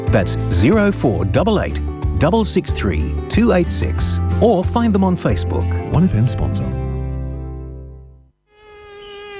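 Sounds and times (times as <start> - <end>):
speech: 0.1 - 6.8
mosquito buzzing: 8.4 - 9.3.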